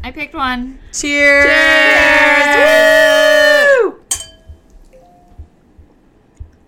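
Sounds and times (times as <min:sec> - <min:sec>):
speech: 0:00.0 - 0:02.9
several voices cheering in a toast: 0:01.2 - 0:04.0
shot glasses clinking in a toast: 0:04.1 - 0:05.4.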